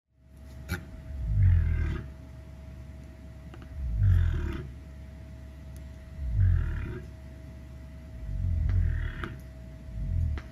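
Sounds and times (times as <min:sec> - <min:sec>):
cassowary: 0:00.7 - 0:02.1, 0:03.8 - 0:04.8, 0:06.2 - 0:07.1, 0:08.3 - 0:10.4.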